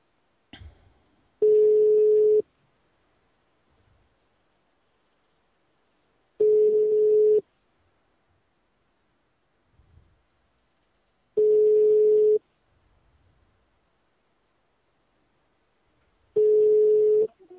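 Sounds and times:
telephone ringback tone while a call is placed: 1.4 - 2.4, 6.4 - 7.4, 11.4 - 12.4, 16.4 - 17.3.

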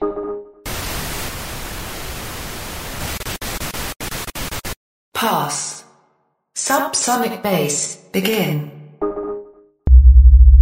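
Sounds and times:
broadband static hiss: 0.7 - 4.8
speech: 5.2 - 5.8, 6.6 - 8.7
tonal hum: 9.9 - 10.5.

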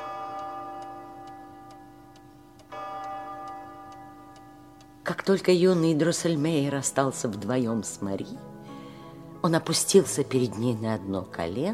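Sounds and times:
clocks ticking: 0.0 - 8.2
speech: 5.1 - 8.5, 9.4 - 11.7.

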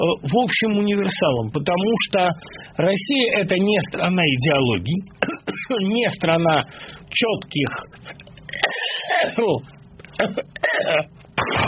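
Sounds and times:
speech: 0.0 - 11.6
harsh stubborn cough: 5.2 - 5.8, 8.5 - 9.4, 10.2 - 11.6
throat-clearing: 8.5 - 9.4, 10.1 - 11.6.

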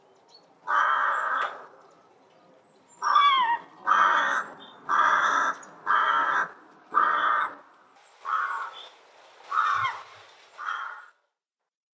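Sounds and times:
rook Corvus frugilegus cawing in Russia: 0.6 - 1.7, 3.0 - 8.9, 9.5 - 11.3.

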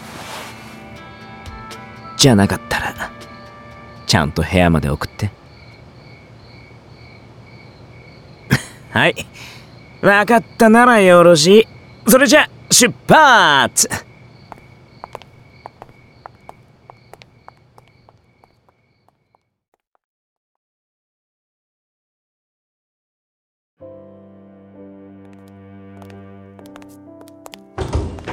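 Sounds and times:
speech: 2.2 - 2.9, 4.1 - 5.4, 9.0 - 14.1
footsteps tapping: 14.4 - 19.9, 25.2 - 28.3.

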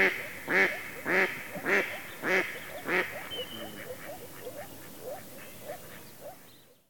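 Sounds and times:
mallard quacking: 0.0 - 4.2.

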